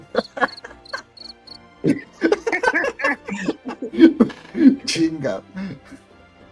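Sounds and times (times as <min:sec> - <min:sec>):
people laughing: 0:00.0 - 0:06.0
sound-effect cricket chirping: 0:00.2 - 0:01.6
speech: 0:01.8 - 0:02.1, 0:05.2 - 0:06.1.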